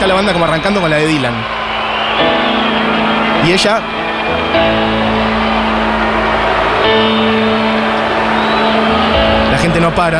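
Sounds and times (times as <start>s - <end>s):
speech: 0.0s - 1.6s, 3.4s - 5.0s, 9.6s - 10.1s
large crowd booing at a concert: 0.0s - 10.1s
sharp whistles from a concert crowd: 0.2s - 5.0s, 8.2s - 9.4s.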